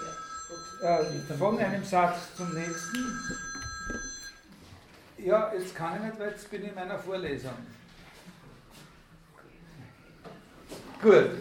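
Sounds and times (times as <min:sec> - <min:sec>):
mobile phone ringing during a university lecture: 0:00.0 - 0:04.5
speech: 0:00.8 - 0:04.0, 0:05.2 - 0:07.8, 0:11.0 - 0:11.4.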